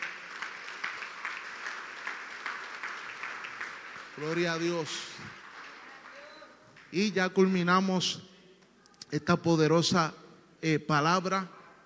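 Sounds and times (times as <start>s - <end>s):
audience applauding: 0.0s - 6.9s
speech: 4.2s - 5.4s, 6.9s - 8.3s, 9.1s - 11.6s.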